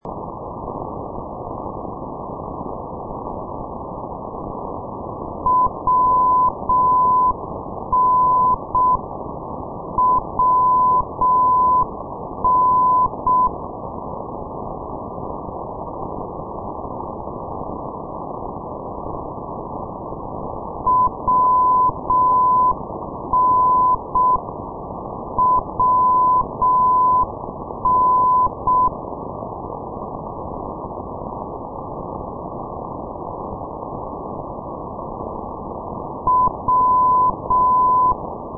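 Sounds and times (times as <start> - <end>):
non-directional radio beacon signal: 5.4 - 9.0, 10.0 - 13.6, 20.8 - 24.4, 25.4 - 29.0, 36.2 - 38.2.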